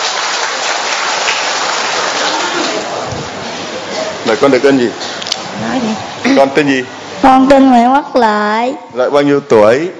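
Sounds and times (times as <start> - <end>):
audience applause: 0.0 - 3.4
speech: 4.3 - 9.9.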